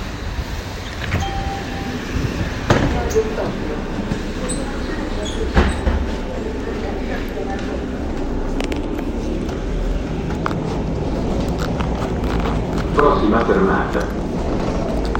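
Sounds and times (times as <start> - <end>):
city bus engine rumble: 0.0 - 15.1
road noise inside a moving city bus: 0.0 - 15.1
rattles and clicks inside a moving city bus: 10.2 - 15.1
speech: 13.6 - 14.2.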